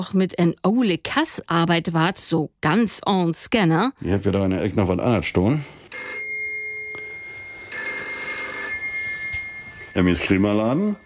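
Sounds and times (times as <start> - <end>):
speech: 0.0 - 6.1, 10.0 - 11.0
old-fashioned telephone bell ringing: 5.9 - 11.0.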